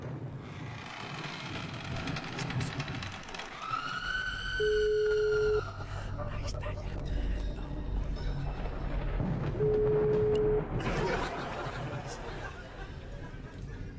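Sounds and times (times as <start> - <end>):
laughter: 1.8 - 13.9
steady mid-pitched telephone ringback tone as a call is placed: 4.6 - 5.9, 9.6 - 10.8.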